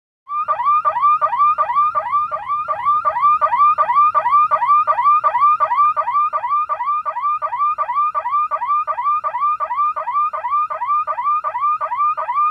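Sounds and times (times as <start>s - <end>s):
rapid high-pitched car alarm: 0.3s - 12.4s.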